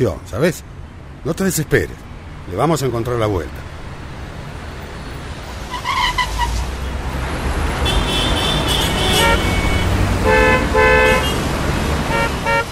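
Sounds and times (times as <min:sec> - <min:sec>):
speech: 0:00.0 - 0:03.7
idling traffic jammed at a broken traffic light: 0:00.0 - 0:12.6
car horns honking in a traffic jam: 0:07.7 - 0:12.6.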